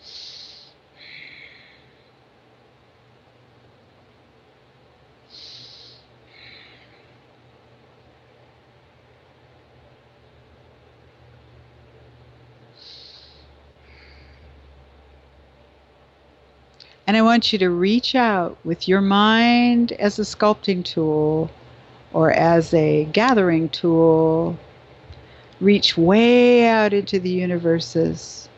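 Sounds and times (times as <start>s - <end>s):
deep breaths during a guided meditation: 0.0s - 2.2s, 5.3s - 7.2s, 12.7s - 14.6s, 25.1s - 25.6s
low steady hum: 0.0s - 28.5s
speech: 17.1s - 24.6s, 25.6s - 28.5s.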